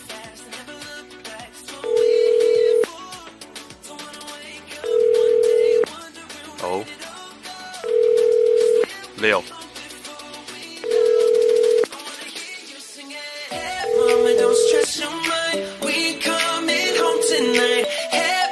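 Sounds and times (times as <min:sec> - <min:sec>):
music: 0:00.0 - 0:18.5
indoor landline telephone tone beeping: 0:01.9 - 0:02.9, 0:04.8 - 0:05.9, 0:07.9 - 0:08.9, 0:10.8 - 0:11.9, 0:13.8 - 0:14.9, 0:16.8 - 0:17.8
person speaking: 0:09.2 - 0:09.5, 0:13.9 - 0:14.9.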